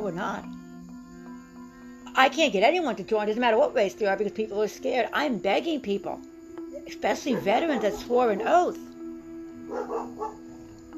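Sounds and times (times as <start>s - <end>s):
speech: 0.0s - 0.6s, 2.2s - 8.9s
dogs barking: 7.1s - 8.6s, 9.7s - 10.6s.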